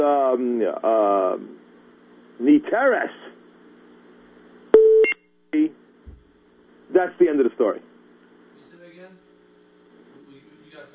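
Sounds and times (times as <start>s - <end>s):
speech: 0.3s - 1.6s, 2.4s - 3.3s, 6.9s - 7.9s
electronic beeps on a phone line: 4.8s - 5.2s.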